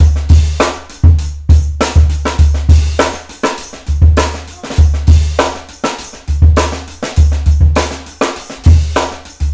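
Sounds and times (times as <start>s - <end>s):
funky drum loops: 0.0s - 9.5s
loud hooting: 4.5s - 5.1s.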